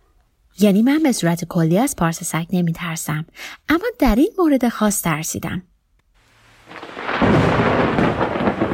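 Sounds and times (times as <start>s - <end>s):
speech: 0.6s - 5.7s
thunder rumbling: 6.4s - 8.7s.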